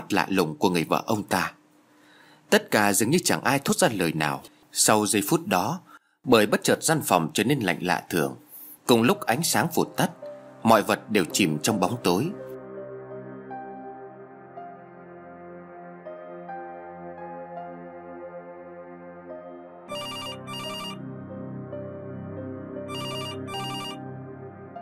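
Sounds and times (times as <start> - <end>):
speech: 0.0 - 1.6, 2.5 - 12.4
sustained low musical drone: 9.1 - 24.8
telephone ringing in double rings: 19.9 - 21.0, 22.9 - 24.0.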